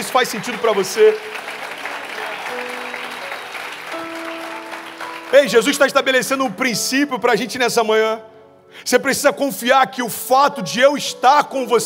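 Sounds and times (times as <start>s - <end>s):
audience applauding in a large room: 0.0s - 6.4s
speech: 0.1s - 1.5s, 5.3s - 11.8s.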